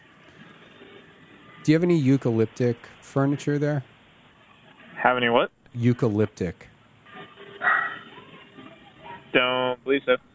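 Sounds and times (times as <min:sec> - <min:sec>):
low hum: 0:00.0 - 0:10.3
speech: 0:01.6 - 0:03.9, 0:05.0 - 0:06.7, 0:09.3 - 0:10.3
dog bark in a store: 0:07.5 - 0:08.4.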